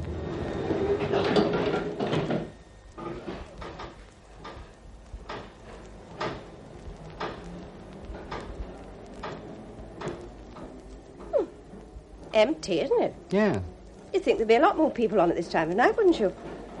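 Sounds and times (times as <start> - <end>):
sliding train doors shutting: 0.1 - 2.6, 16.4 - 16.7
speech: 12.4 - 16.4.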